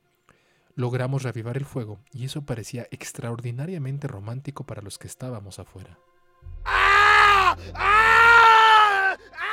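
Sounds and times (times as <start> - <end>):
speech: 0.8 - 6.8, 7.6 - 8.1
faint low rumble: 6.4 - 8.4
person screaming inside a house: 6.5 - 9.5.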